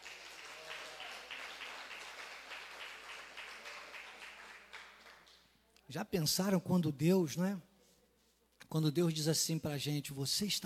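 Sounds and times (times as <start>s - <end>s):
church audience applauding: 0.0s - 5.4s
speech: 5.9s - 7.7s, 8.7s - 10.6s.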